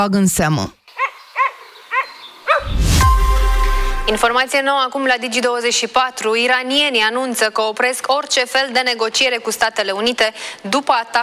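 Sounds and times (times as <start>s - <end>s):
speech: 0.0s - 0.8s, 4.0s - 11.2s
stray dogs barking in village streets: 0.9s - 2.7s.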